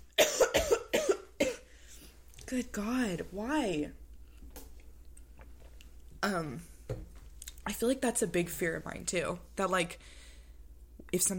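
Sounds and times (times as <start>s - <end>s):
person coughing in harsh raspy bursts: 0.2s - 1.7s
speech: 2.5s - 4.0s, 6.2s - 7.0s, 7.7s - 10.2s, 11.1s - 11.3s.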